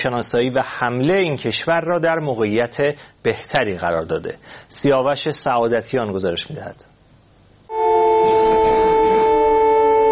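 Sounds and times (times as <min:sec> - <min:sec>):
speech: 0:00.0 - 0:06.9
air raid warning siren in a city: 0:07.7 - 0:10.0.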